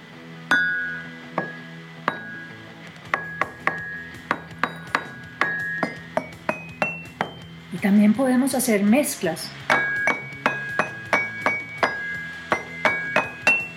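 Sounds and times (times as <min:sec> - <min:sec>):
small glass and porcelain pieces clinking: 0:03.2 - 0:07.5, 0:09.7 - 0:13.7
speech: 0:07.8 - 0:09.6.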